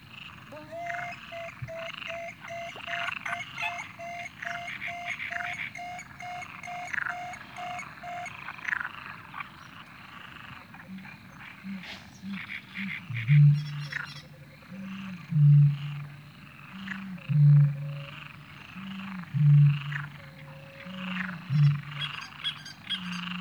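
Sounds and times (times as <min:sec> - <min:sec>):
frogs: 0:00.0 - 0:23.4
coots calling: 0:00.3 - 0:08.5
great marsh warblers singing: 0:00.5 - 0:08.4.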